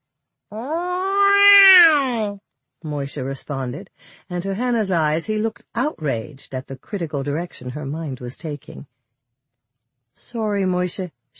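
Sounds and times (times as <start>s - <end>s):
speech: 0.5s - 0.8s, 2.8s - 9.0s, 10.2s - 11.3s
orange and white house cat on a pillow meowing: 0.6s - 2.1s.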